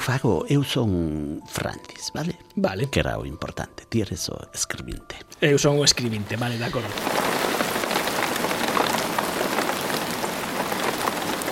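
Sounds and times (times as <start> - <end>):
speech: 0.1 - 7.4
rain pattering densely on a hard surface: 5.4 - 11.5.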